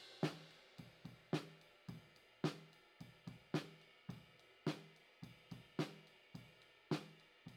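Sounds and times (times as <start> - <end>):
hi-hat: 0.0 - 7.5.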